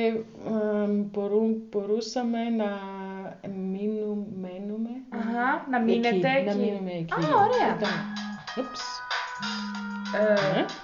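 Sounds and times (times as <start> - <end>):
speech: 0.0 - 10.8
new mobile phone ringtone playing a short electronic melody: 7.2 - 10.8.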